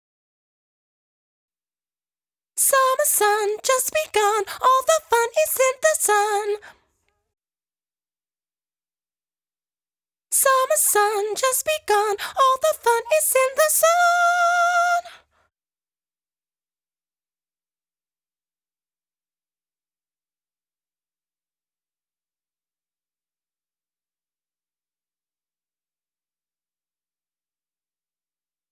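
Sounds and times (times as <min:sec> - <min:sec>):
high female chorus vocal in F minor octave: 0:02.6 - 0:06.8, 0:10.4 - 0:15.2.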